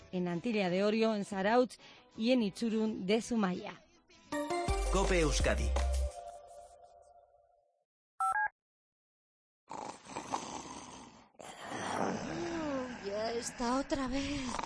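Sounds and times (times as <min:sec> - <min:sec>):
speech: 0:00.1 - 0:03.8, 0:04.9 - 0:05.9, 0:13.4 - 0:14.6
person snoring: 0:09.7 - 0:14.6.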